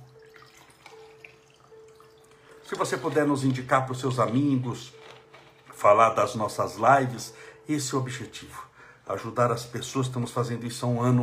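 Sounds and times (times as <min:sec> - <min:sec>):
water trickling and splashing into a container with light bubbling: 0:00.0 - 0:03.3
speech: 0:02.7 - 0:05.1, 0:05.8 - 0:11.2.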